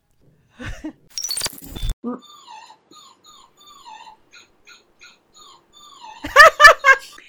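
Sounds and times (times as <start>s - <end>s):
speech: 2.0s - 2.5s
faint thin whimper: 2.0s - 7.2s
dog whining: 2.2s - 6.6s
laughter: 6.2s - 7.2s.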